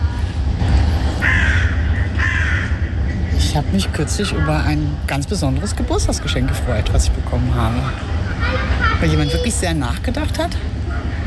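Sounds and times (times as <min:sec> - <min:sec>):
outdoor rumble: 0:00.0 - 0:11.2
crow cawing: 0:01.2 - 0:03.3
speech: 0:03.6 - 0:10.8.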